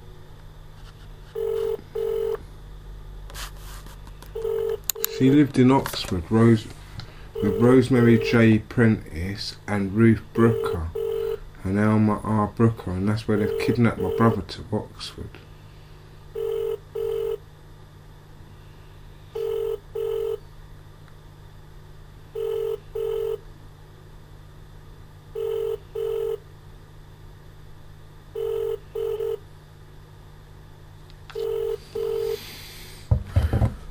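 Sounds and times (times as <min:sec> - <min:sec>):
faint low hum: 0:00.0 - 0:33.8
telephone ringback tone double ring: 0:01.4 - 0:02.4, 0:04.4 - 0:05.5, 0:07.4 - 0:08.4, 0:10.4 - 0:11.4, 0:13.3 - 0:14.4, 0:16.3 - 0:17.4, 0:19.3 - 0:20.4, 0:22.4 - 0:23.4, 0:25.3 - 0:26.4, 0:28.4 - 0:29.4, 0:31.3 - 0:32.4
speech: 0:05.2 - 0:06.8, 0:07.4 - 0:11.0, 0:11.6 - 0:15.4.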